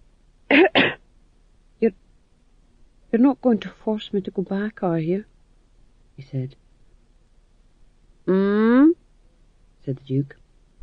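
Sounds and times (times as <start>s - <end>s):
dry throat-clearing cough: 0.5s - 1.0s
speech: 1.8s - 2.0s, 3.1s - 5.3s, 6.2s - 6.6s, 8.3s - 8.9s, 9.8s - 10.4s.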